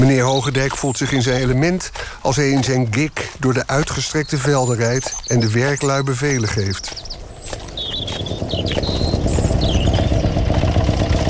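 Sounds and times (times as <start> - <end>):
cars and motorcycles carrying soldiers arriving for military manoeuvres: 0.0 - 11.2
speech: 0.1 - 7.0
thin high chirps: 4.4 - 10.6.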